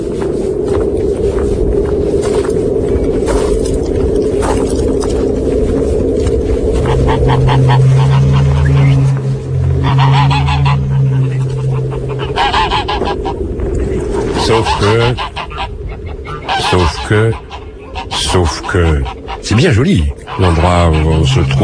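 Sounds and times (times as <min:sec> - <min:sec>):
low hum: 0:00.0 - 0:21.6
flock of geese honking at a farm among fir trees by a river: 0:06.7 - 0:19.6, 0:20.2 - 0:21.6
speech: 0:17.1 - 0:17.4, 0:18.7 - 0:21.6.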